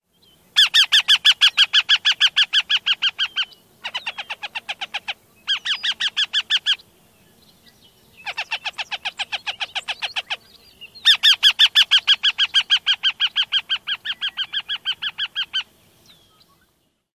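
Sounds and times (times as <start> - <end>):
northern harrier pair alarm calls at nest: 0.6 - 6.8, 8.2 - 15.7.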